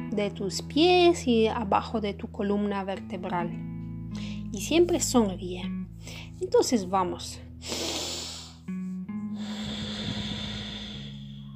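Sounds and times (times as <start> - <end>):
speech: 0.2 - 7.9
breathing in and out through the nose: 4.1 - 4.5, 7.6 - 8.7, 9.3 - 11.5.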